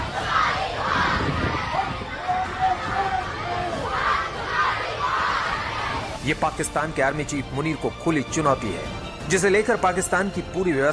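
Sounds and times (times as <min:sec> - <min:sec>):
large protest crowd chanting against the government in the streets of Pakistan-occupied Kashmir: 0:00.0 - 0:06.2
speech: 0:06.3 - 0:10.9.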